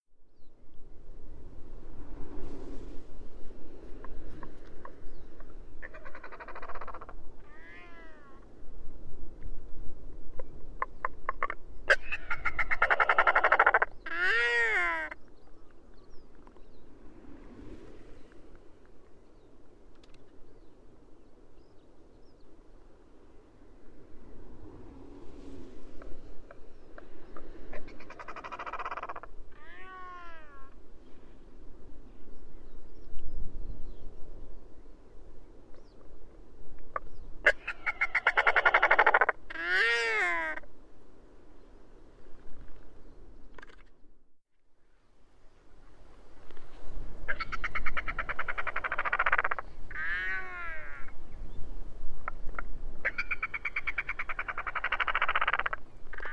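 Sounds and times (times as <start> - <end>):
Royal Albatrosses singing: 4.0 - 8.4, 10.8 - 15.4, 26.5 - 30.8, 36.9 - 40.7, 47.2 - 51.3, 52.2 - 56.3.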